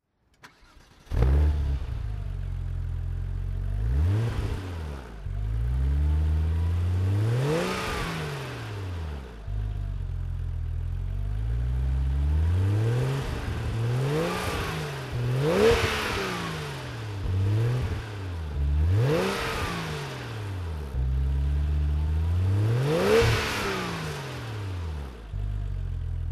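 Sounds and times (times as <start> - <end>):
Porsche 911 993 Turbo engine on throttle: 1.1 - 26.2.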